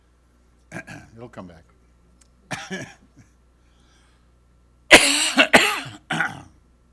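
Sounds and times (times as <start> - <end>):
person coughing, wet and harsh coughs: 0.7 - 1.1, 2.5 - 3.1, 4.9 - 6.6
speech: 1.2 - 1.8, 2.7 - 3.3.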